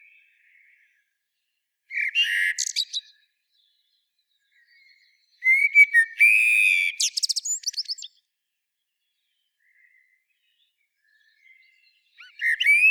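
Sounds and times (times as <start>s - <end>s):
common blackbird Turdus merula song with mellow whistles and scratchy twittering: 0.0s - 12.8s.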